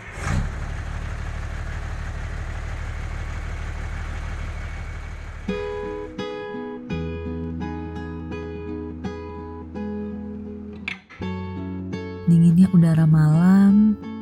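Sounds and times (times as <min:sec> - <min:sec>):
heavy truck engine rumbling: 0:00.0 - 0:06.2
speech: 0:12.3 - 0:14.0.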